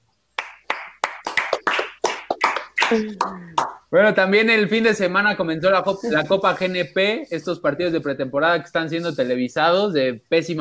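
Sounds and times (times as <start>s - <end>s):
sharp hand claps: 0.4s - 3.9s
speech: 2.9s - 10.6s.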